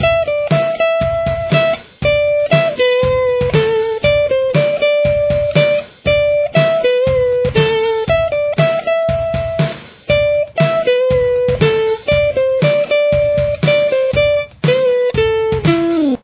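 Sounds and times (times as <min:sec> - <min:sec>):
solo guitar: 0:00.0 - 0:16.2.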